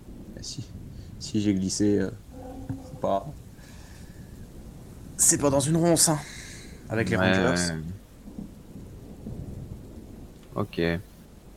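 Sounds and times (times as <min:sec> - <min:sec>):
deep rolling thunder: 0:00.0 - 0:11.5
rain outdoors among thickets: 0:00.0 - 0:11.5
speech: 0:00.4 - 0:02.2, 0:03.0 - 0:03.4, 0:05.2 - 0:08.0, 0:10.6 - 0:11.1.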